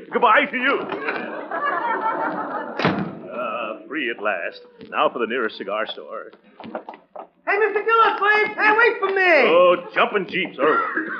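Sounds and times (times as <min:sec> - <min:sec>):
laughter: 0:00.0 - 0:04.4, 0:07.5 - 0:11.1
steady murmur of noise: 0:00.0 - 0:11.1
speech: 0:00.1 - 0:02.4, 0:03.9 - 0:11.1
door slamming shut: 0:02.7 - 0:03.4.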